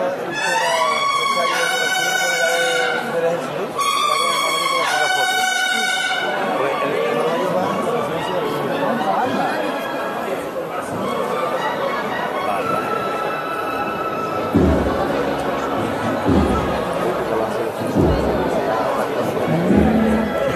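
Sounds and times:
busy outdoor crowd chattering: 0:00.0 - 0:20.5
cornet and drum marching band playing brass phrases: 0:00.3 - 0:06.6, 0:07.9 - 0:20.5
low drum thumps of a marching band: 0:14.3 - 0:20.5.

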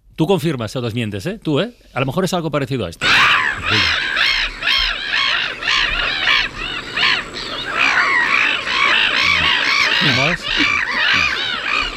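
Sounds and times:
speech: 0:00.2 - 0:04.0
flock of black-headed gulls calling: 0:03.0 - 0:11.9.

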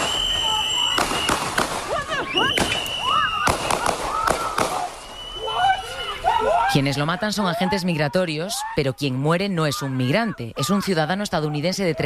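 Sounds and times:
sharp loud gunshots: 0:00.0 - 0:05.0
agitated shouting voices: 0:00.0 - 0:12.0
speech: 0:06.8 - 0:12.0.

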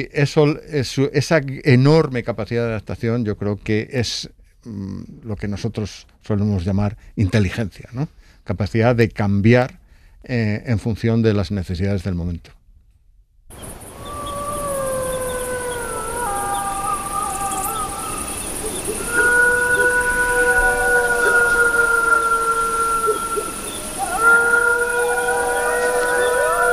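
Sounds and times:
speech: 0:00.0 - 0:12.6
steady hiss: 0:00.0 - 0:12.6, 0:13.5 - 0:26.7
wolf pack howling: 0:13.8 - 0:26.7.

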